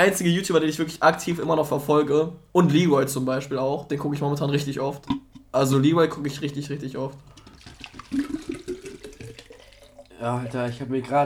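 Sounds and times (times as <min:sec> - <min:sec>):
speech: 0:00.0 - 0:07.4, 0:10.2 - 0:11.2
water poured into a drinking bottle: 0:06.4 - 0:11.2.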